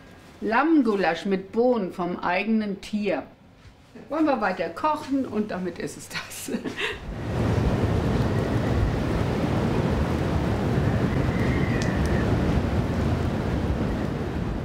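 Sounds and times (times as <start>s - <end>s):
speech: 0.4s - 3.4s, 4.0s - 7.4s
gale-force northwest storm wind gusting to hurricane force: 7.0s - 14.6s.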